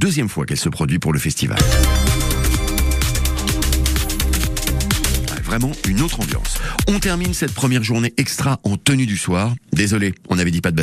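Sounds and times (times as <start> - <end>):
speech: 0.0 - 2.3, 5.5 - 10.8
electronic dance music DJ set at a summer music festival: 1.6 - 7.9.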